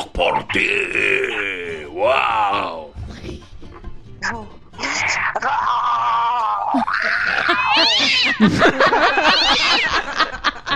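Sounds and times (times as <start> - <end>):
speech: 0.5 - 2.6, 8.4 - 10.2
laughter: 5.3 - 10.7
cat meowing: 7.6 - 8.4.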